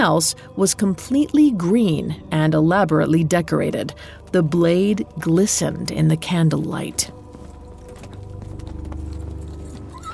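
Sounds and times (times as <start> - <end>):
speech: 0.0 - 7.2
horse hooves clopping: 3.8 - 10.1.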